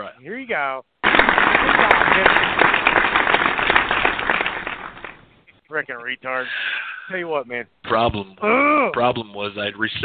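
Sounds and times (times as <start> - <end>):
speech: 0.1 - 3.6, 5.7 - 10.0
loud dense hand clapping: 1.0 - 5.3.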